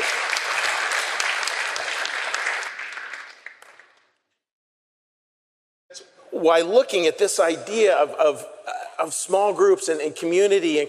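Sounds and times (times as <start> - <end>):
crowd applause: 0.0 - 4.0
speech: 6.4 - 10.8.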